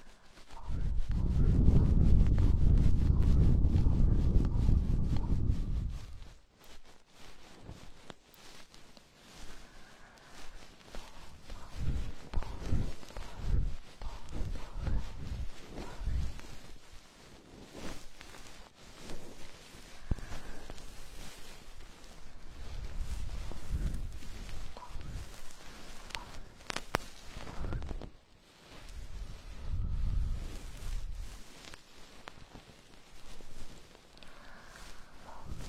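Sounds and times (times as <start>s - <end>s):
goose-feather stick rustling and scratching in ear cleaning: 0.0s - 35.6s
heavy muffled rumble: 0.5s - 6.4s, 9.5s - 16.8s, 19.2s - 28.1s, 28.8s - 31.5s, 34.5s - 35.6s.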